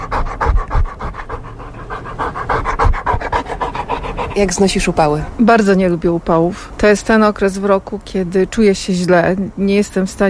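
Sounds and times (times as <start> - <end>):
dog panting in summer heat: 0.0 - 5.7
speech: 4.4 - 10.2.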